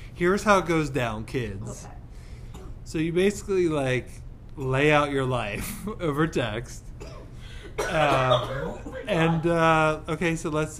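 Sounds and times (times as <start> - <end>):
speech: 0.2 - 2.0, 2.9 - 6.8, 7.8 - 10.7
person clearing throat after choking: 7.0 - 9.1.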